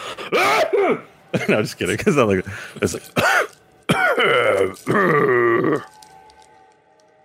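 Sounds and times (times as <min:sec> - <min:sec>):
speech: 0:00.3 - 0:06.0
voice imitating a dragon coughing: 0:03.2 - 0:05.8.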